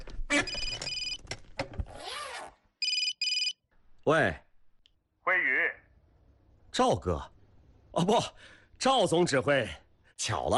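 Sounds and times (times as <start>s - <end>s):
phone ringing with an incoming call: 0.3s - 1.2s, 2.8s - 3.6s
speech: 4.0s - 4.4s, 6.8s - 7.3s, 7.9s - 10.5s.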